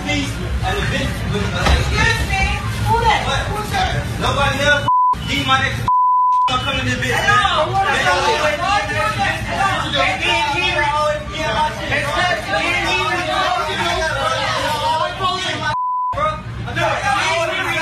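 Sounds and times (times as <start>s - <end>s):
crowd chatter in a busy fast-food restaurant: 0.0s - 5.7s, 6.5s - 17.8s
speech: 4.2s - 5.9s, 6.5s - 14.4s
electronic beeps in a fast-food restaurant: 4.9s - 5.3s, 5.9s - 6.5s.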